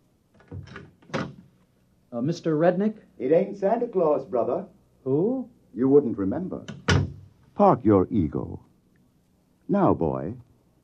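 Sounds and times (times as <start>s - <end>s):
wooden office door thunk as it swings and knocks: 0.4s - 1.5s, 6.7s - 7.3s
speech: 2.1s - 6.8s, 7.6s - 8.7s, 9.7s - 10.5s
office door latch click: 6.6s - 7.2s.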